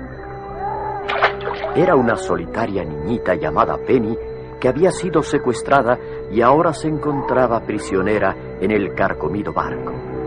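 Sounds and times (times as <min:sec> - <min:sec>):
bottle dropped splashing into swamp water: 0:01.0 - 0:02.1
speech: 0:01.6 - 0:10.1.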